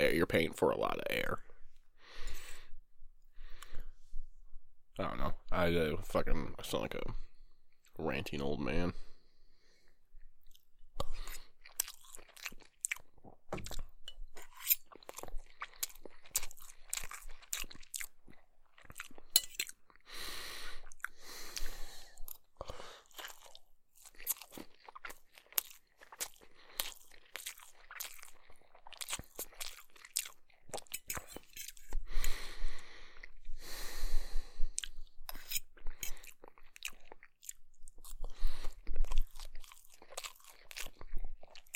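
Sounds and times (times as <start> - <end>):
speech: 0.0 - 1.5, 5.0 - 7.3, 8.0 - 9.1
person chewing and eating crunchy food: 9.8 - 41.7.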